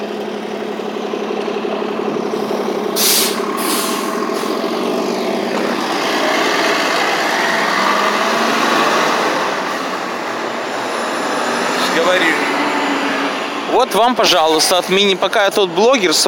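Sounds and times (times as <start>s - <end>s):
city bus diesel engine idling on the street: 0.0s - 16.2s
speech: 13.9s - 16.2s.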